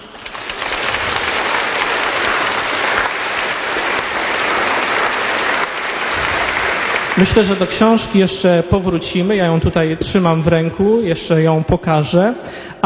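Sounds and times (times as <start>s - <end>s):
audience applause welcoming a guest author and children: 0.0s - 8.1s
speech: 7.2s - 12.8s.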